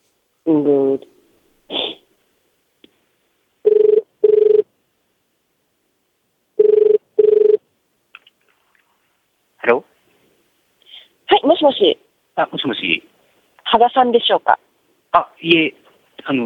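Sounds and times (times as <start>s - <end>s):
speech: 0.4s - 1.1s, 11.6s - 16.4s
telephone ringback tone on an international call: 3.6s - 4.7s, 6.6s - 7.6s.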